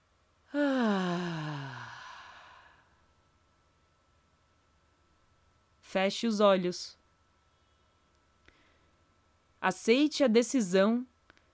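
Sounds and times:
voiced sigh of a deep exhale during a guided breathing exercise: 0.5 - 3.0
speech: 5.9 - 7.0, 9.6 - 11.1.

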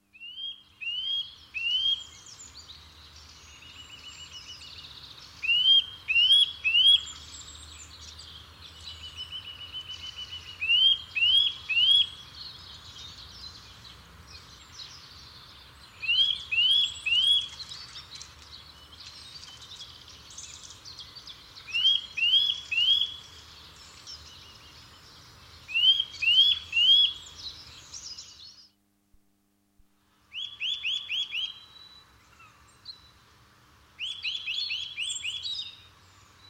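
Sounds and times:
Eurasian nuthatch calls: 0.2 - 2.4, 5.3 - 7.5, 9.0 - 13.1, 15.9 - 18.4, 20.4 - 23.5, 25.6 - 28.6, 30.3 - 33.1, 34.0 - 35.9.

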